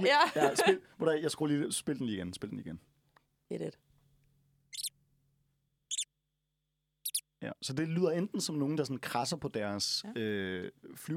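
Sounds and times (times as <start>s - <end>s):
laughter: 0.0s - 0.8s
speech: 0.0s - 3.9s, 7.4s - 11.1s
mouse squeaking: 4.7s - 5.0s, 5.9s - 6.2s, 7.0s - 7.3s.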